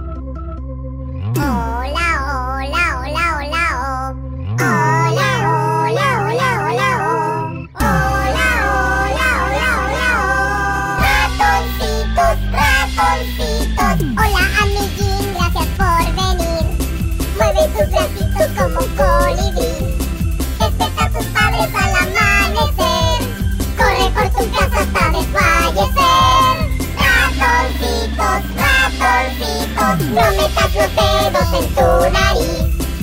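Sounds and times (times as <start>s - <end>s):
children's song with high sing-song vocals and bouncy instrumental backing: 1.4s - 33.0s
speech: 27.6s - 32.8s.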